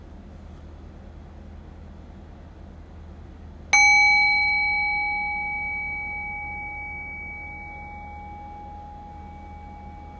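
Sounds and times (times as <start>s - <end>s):
meditation bell struck and ringing: 3.8s - 10.1s.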